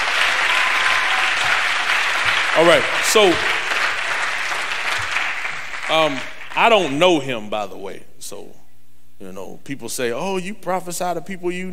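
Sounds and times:
audience clapping hands at a preaching service: 0.0s - 7.2s
speech: 2.6s - 3.6s, 5.9s - 8.6s, 9.2s - 11.7s.

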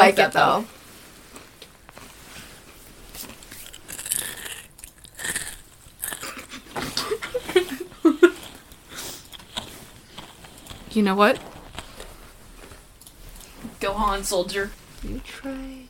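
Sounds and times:
speech: 0.1s - 0.8s, 11.0s - 11.5s, 13.8s - 15.8s
faintly lime-flavoured crunchy food being chewed: 3.1s - 7.5s, 8.3s - 13.6s.

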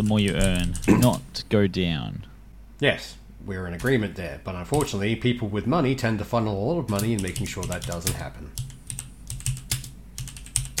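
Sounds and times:
rapid forceful computer keyboard typing: 0.0s - 1.2s, 6.9s - 10.7s
speech: 0.0s - 8.7s.

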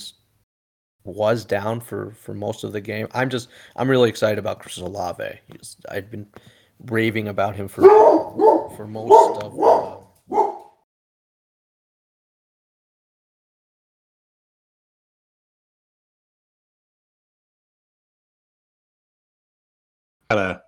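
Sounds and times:
speech: 1.0s - 10.4s
dog barking: 7.8s - 10.8s.

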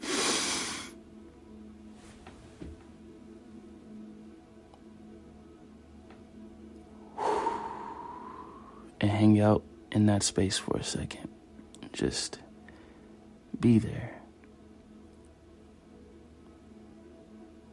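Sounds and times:
person taking a deep breath during a guided breathing exercise: 7.0s - 9.0s
speech: 9.0s - 11.4s, 12.0s - 12.4s, 13.6s - 14.2s.

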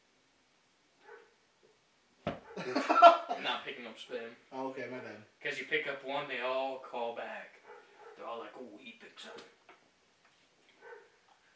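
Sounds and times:
faint dog bark: 1.0s - 1.4s, 7.6s - 8.3s, 10.7s - 11.3s
laughter: 2.6s - 3.6s
speech: 3.6s - 7.6s, 8.2s - 9.6s.

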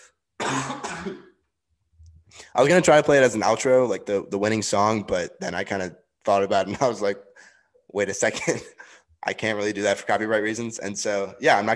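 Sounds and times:
person clearing throat: 0.4s - 1.4s, 8.2s - 8.8s
person coughing: 0.4s - 1.4s, 8.2s - 8.9s
speech: 0.5s - 1.3s, 2.6s - 7.3s, 7.9s - 11.7s.

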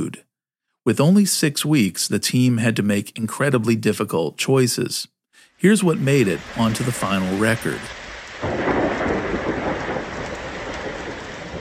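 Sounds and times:
speech: 0.0s - 8.6s
deep rumble of thunder: 5.6s - 11.5s
steady heavy rain in a thunderstorm: 5.6s - 11.5s.

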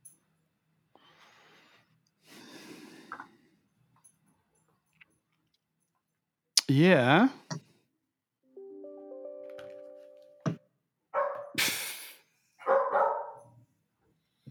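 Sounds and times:
speech: 6.7s - 7.6s
dog barking: 11.2s - 11.6s, 12.6s - 13.6s.

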